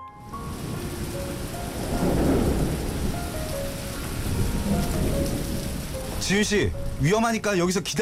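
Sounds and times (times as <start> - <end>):
heavy downpour of rain on a summer night: 0.2 - 8.0
speech: 6.2 - 8.0.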